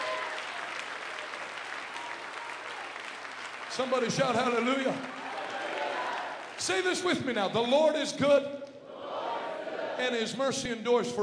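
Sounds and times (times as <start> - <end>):
congregation applauding: 0.0 - 7.7
speech: 3.8 - 5.2, 6.6 - 8.7, 10.0 - 11.2.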